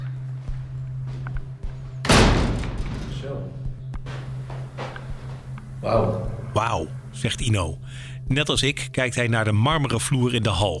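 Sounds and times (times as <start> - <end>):
steady low hum: 0.0 - 9.0
door thunks and clicks: 2.0 - 5.6
speech: 3.2 - 3.6, 5.8 - 10.7.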